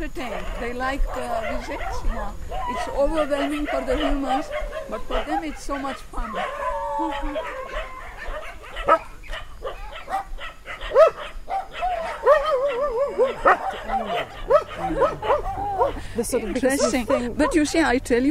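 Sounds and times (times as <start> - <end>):
speech: 0.0 - 7.7, 16.2 - 18.2
crowd of dogs barking and yipping: 0.1 - 17.9.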